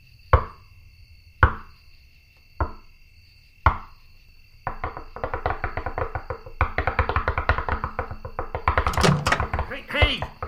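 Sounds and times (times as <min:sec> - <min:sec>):
faint insect-like hum: 0:00.0 - 0:10.4
solid knocks on a door: 0:02.6 - 0:02.8, 0:04.6 - 0:10.4
people talking: 0:09.0 - 0:10.4.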